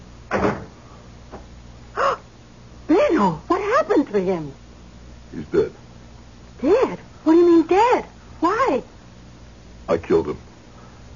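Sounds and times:
door clunk with slight creak: 0.3 - 0.8
door shutting: 0.3 - 1.4
speech: 3.2 - 4.6, 5.3 - 5.8, 6.6 - 8.9, 9.9 - 10.5.

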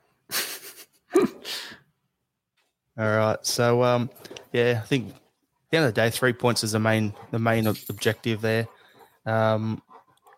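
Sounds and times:
speech: 3.0 - 9.9
dog panting: 4.1 - 5.3, 6.0 - 10.3.

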